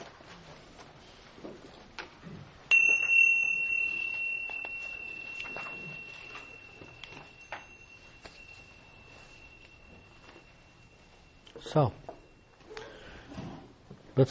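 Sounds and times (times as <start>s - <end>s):
soft rustling and small movement sounds: 0.0s - 13.8s
bell struck to begin meditation: 2.7s - 13.3s
speech: 11.6s - 12.0s.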